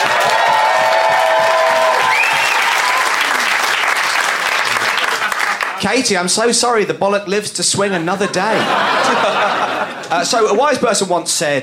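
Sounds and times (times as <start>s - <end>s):
audience applauding to vote in a debate: 0.0s - 5.9s
faint whoops and whistles: 2.0s - 2.9s
laughter: 4.6s - 5.8s, 8.0s - 10.7s
speech: 5.8s - 11.6s.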